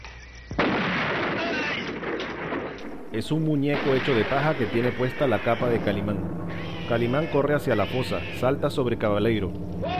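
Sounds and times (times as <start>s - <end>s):
gunshot fired at a pit among graves: 0.5s - 2.8s
sustained rushing roar: 2.8s - 9.9s
speech: 3.1s - 9.9s.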